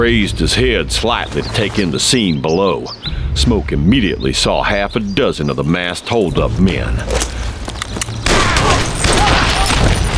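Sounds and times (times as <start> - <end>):
speech: 0.0 - 7.5
gunshots during an ambush on masked mounted holdup men: 8.2 - 10.1.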